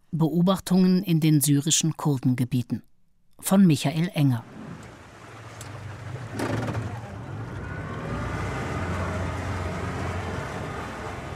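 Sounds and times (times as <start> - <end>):
speech: 0.2 - 4.6
powerful outboard motor pulling a boat backwards onto a river: 4.4 - 11.3.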